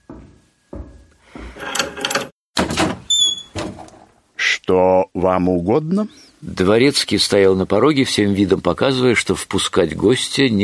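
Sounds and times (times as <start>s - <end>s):
muffled footsteps: 0.0s - 1.6s
door being handled and swung open: 0.8s - 4.1s
speech: 4.7s - 10.6s.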